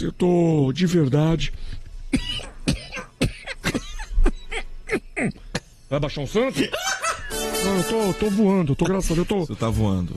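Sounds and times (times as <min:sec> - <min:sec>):
speech: 0:00.0 - 0:02.5, 0:05.2 - 0:06.9, 0:07.6 - 0:10.1
person coughing wet and throaty: 0:02.1 - 0:05.7.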